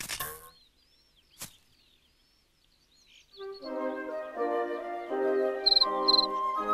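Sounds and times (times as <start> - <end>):
sustained musical tones: 3.4 - 6.7
cricket chirping by rubbing its wings: 5.6 - 6.3.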